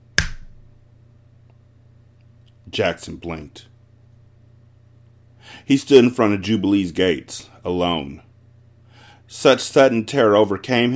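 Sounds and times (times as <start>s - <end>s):
quiet hum: 0.0s - 10.9s
sharp pop: 0.2s - 0.6s
speech: 2.7s - 3.7s, 5.5s - 8.3s, 9.3s - 10.9s.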